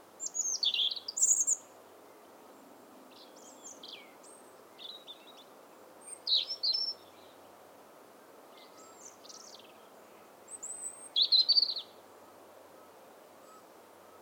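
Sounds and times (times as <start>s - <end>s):
soft constant background hiss: 0.0s - 14.2s
European robin Erithacus rubecula singing: 0.2s - 2.2s, 3.1s - 7.4s, 8.5s - 9.9s, 10.5s - 12.0s.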